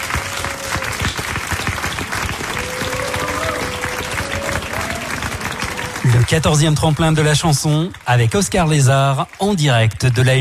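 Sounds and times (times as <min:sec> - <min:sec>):
crowd applauding: 0:00.0 - 0:10.3
speech: 0:06.3 - 0:10.3.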